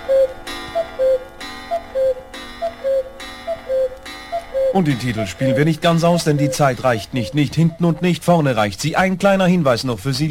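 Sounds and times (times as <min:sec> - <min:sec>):
clock striking twelve noon: 0:00.0 - 0:08.2
speech: 0:04.8 - 0:10.2.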